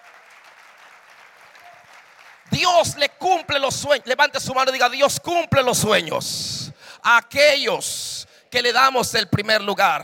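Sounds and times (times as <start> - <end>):
thin scattered audience clapping: 0.0 - 3.1
speech: 2.5 - 10.0.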